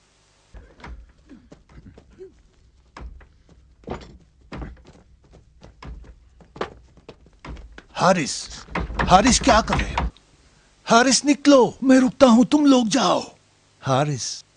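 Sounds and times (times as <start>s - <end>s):
heavy thuds of a door being battered and broken down: 0.6s - 10.2s
speech: 8.0s - 10.0s, 10.9s - 14.4s.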